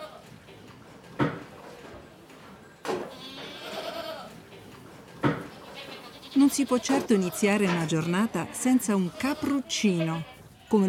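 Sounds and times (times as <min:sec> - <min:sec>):
goats bleating on a farm: 0:00.0 - 0:00.2, 0:03.1 - 0:04.4, 0:05.5 - 0:10.8
quiet farmyard ambience: 0:00.0 - 0:10.8
speech: 0:06.4 - 0:10.8.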